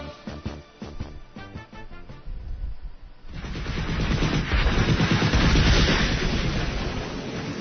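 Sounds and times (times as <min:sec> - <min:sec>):
booming explosions: 0:03.3 - 0:07.5.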